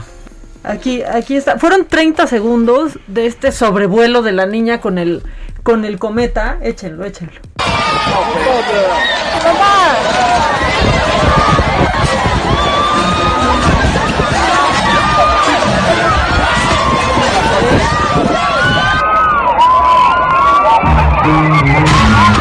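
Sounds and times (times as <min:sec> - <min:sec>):
speech: 0:00.6 - 0:07.5, 0:08.1 - 0:10.5
crowd screaming and shouting in terror outdoors in a park: 0:07.6 - 0:22.3.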